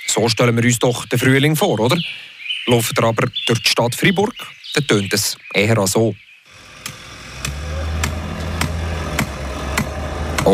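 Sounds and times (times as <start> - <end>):
speech: 0.1 - 6.2
steady low engine-like drone of construction machinery in Freiburg: 6.5 - 10.5
sharp metallic strikes of construction work in Freiburg: 6.6 - 10.5.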